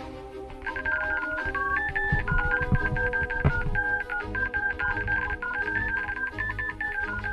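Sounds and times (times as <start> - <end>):
telephone keypad tones dialing a long number: 0.7 - 7.3.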